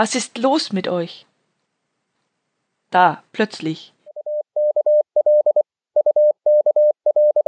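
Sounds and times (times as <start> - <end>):
speech: 0.0 - 1.3, 2.9 - 4.0
Morse code beeps in a steady mid-pitched tone: 4.1 - 7.4.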